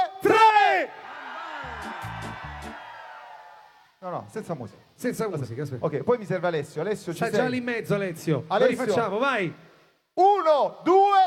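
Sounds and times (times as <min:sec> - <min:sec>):
live crowd shouting in unison: 0:00.2 - 0:03.9
speech: 0:04.0 - 0:11.2.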